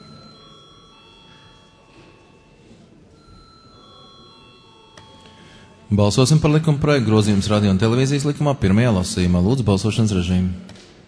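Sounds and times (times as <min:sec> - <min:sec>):
parliament voting call bell ringing: 0:00.0 - 0:07.8
low murmur in the parliament chamber: 0:00.0 - 0:11.0
speech: 0:05.9 - 0:10.7.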